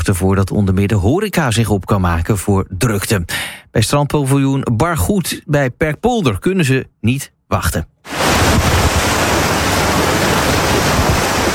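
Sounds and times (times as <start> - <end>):
speech: 0.1 - 8.8
small waves lapping gently against a dike outside a beach pavilion: 8.1 - 11.5.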